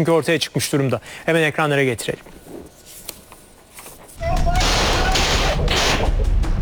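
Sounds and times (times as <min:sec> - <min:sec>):
speech: 0:00.0 - 0:02.4
gunfire from an armed attack on a shuttered jewellery shop in Kağıthane, Istanbul: 0:04.3 - 0:06.6.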